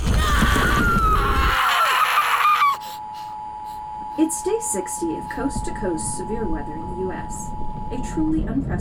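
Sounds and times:
person screaming: 0:00.2 - 0:03.0
speech: 0:04.7 - 0:08.7.

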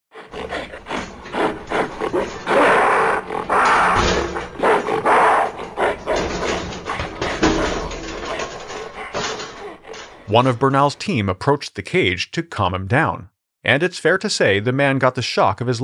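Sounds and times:
gorilla growling and grunting: 0:00.1 - 0:10.5
speech: 0:10.3 - 0:15.8.

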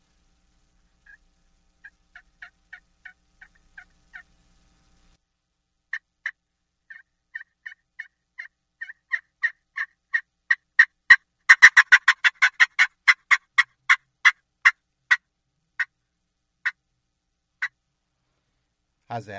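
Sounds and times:
turkey fly-down cackle played on a friction call: 0:01.0 - 0:04.3, 0:05.9 - 0:15.2
speech: 0:19.1 - 0:19.3.

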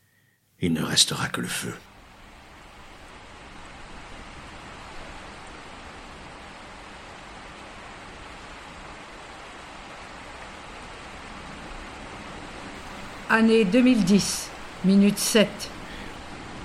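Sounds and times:
speech: 0:00.6 - 0:01.9, 0:13.3 - 0:15.8
steady dense rain falling: 0:01.6 - 0:16.6.

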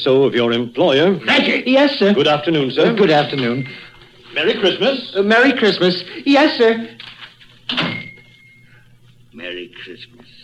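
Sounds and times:
speech: 0:00.0 - 0:07.0, 0:09.4 - 0:10.3
faint room hiss: 0:00.0 - 0:10.4
door shutting with a thud: 0:07.7 - 0:08.2.

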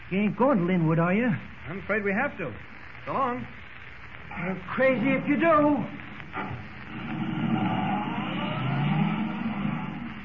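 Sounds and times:
speech: 0:00.1 - 0:03.6, 0:04.3 - 0:07.3
car engine roaring while accelerating at full speed: 0:06.3 - 0:10.2.

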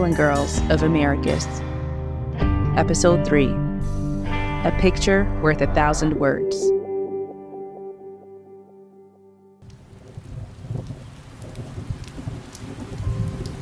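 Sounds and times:
speech: 0:00.0 - 0:01.7, 0:02.8 - 0:04.0, 0:04.6 - 0:06.7
sustained musical tones: 0:02.8 - 0:09.6
low rolling rumbles of thunder: 0:09.6 - 0:13.6
steady summer downpour hissing: 0:09.6 - 0:13.6.

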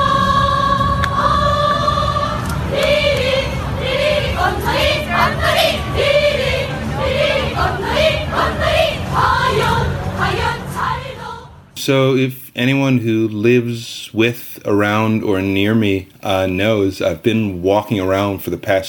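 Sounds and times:
large North Korean cheer squad chanting in unison: 0:00.0 - 0:11.5
dense crowd noise: 0:00.0 - 0:12.2
speech: 0:11.9 - 0:18.8.

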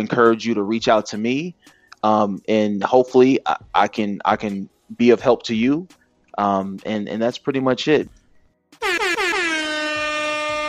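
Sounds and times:
speech: 0:00.0 - 0:08.2
air horn sound effect blasts: 0:08.8 - 0:10.6.

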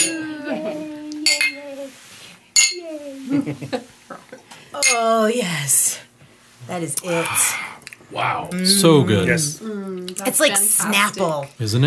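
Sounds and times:
glasses of a lemon drink clinking in a toast: 0:00.0 - 0:00.3, 0:01.2 - 0:01.6, 0:02.6 - 0:02.8, 0:04.8 - 0:05.2
speech: 0:03.3 - 0:03.9, 0:04.8 - 0:05.8, 0:06.7 - 0:11.8
people chatting and calling out during a toast: 0:04.8 - 0:06.0, 0:06.7 - 0:11.8.

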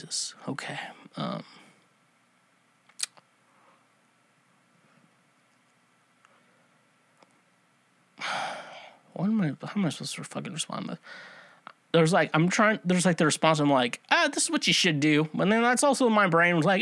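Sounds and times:
speech: 0:00.0 - 0:01.6, 0:08.2 - 0:08.6, 0:09.2 - 0:16.8
heavy breaths blowing into a microphone: 0:11.0 - 0:11.6.

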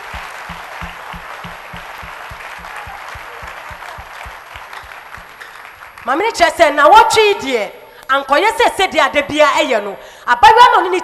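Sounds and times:
audience at a church service clapping in unison: 0:00.0 - 0:06.3
speech: 0:06.1 - 0:11.0.

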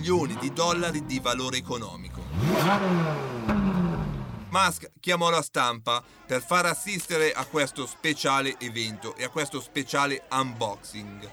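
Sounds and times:
speech: 0:00.0 - 0:03.8, 0:04.5 - 0:11.3
McLaren F1 sports car engine revving: 0:00.0 - 0:04.5
laughter: 0:06.0 - 0:11.3.

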